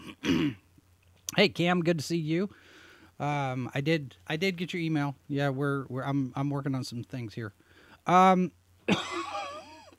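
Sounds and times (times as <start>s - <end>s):
harsh cough from a person with a lingering cough: 0.0s - 0.6s, 8.9s - 9.9s
loud voiced throat clearing: 0.0s - 0.6s
speech: 0.3s - 0.6s, 1.3s - 9.2s.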